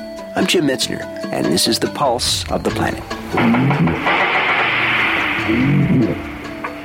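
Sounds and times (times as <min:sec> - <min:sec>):
speech: 0:00.4 - 0:04.4, 0:05.5 - 0:06.3
dense rushing underwater background: 0:02.5 - 0:06.8
low warbling walrus tones sliding up and down: 0:02.6 - 0:06.8
walrus knocks and taps recorded underwater: 0:03.3 - 0:06.8.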